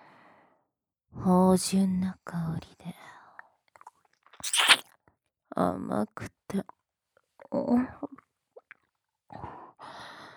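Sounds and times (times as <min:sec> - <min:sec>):
speech: 0:01.3 - 0:03.0, 0:05.6 - 0:06.8, 0:07.5 - 0:08.2
crunchy mouth sounds imitating chewing an ear: 0:04.4 - 0:04.8
tiny wet mouth clicks imitating biting an ear: 0:04.4 - 0:04.8.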